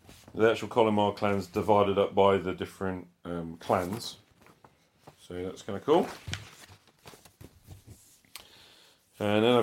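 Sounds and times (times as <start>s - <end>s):
paper map rustling against the microphone: 0.0s - 1.9s, 3.6s - 8.3s, 9.1s - 9.6s
speech: 0.4s - 4.2s, 5.3s - 6.4s, 9.2s - 9.6s.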